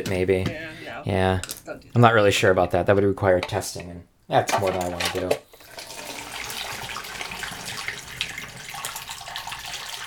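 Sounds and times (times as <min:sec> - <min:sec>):
speech: 0:00.0 - 0:05.4
liquid pouring and splashing into a vessel: 0:05.6 - 0:10.0.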